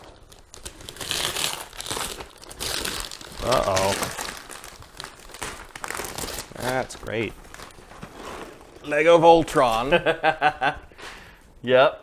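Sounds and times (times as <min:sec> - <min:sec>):
wrapping paper crinkling as a wrapped Christmas gift is torn open: 0:00.0 - 0:08.9
person exclaiming: 0:03.4 - 0:04.2
speech: 0:03.5 - 0:04.1, 0:06.7 - 0:07.4, 0:08.8 - 0:10.8, 0:11.6 - 0:12.0
laughter: 0:09.8 - 0:11.0.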